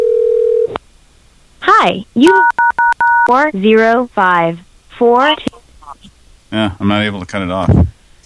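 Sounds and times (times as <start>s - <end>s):
speech: 1.8s - 2.6s, 3.3s - 5.6s, 6.5s - 7.9s
telephone keypad touch tones: 2.3s - 3.3s.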